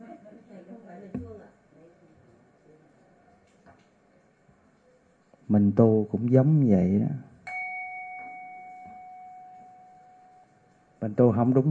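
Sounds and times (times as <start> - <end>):
soft knocks: 1.2 - 1.4
speech: 5.5 - 7.3, 11.0 - 11.7
bell struck with a mallet ringing: 7.5 - 10.7.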